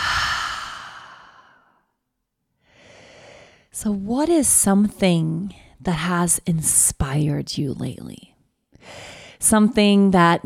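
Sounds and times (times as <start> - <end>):
loud airy mouth exhale: 0.0 - 1.6
long breath in through the nose during a guided breathing exercise: 0.0 - 1.8, 2.6 - 3.7
speech: 3.8 - 10.4.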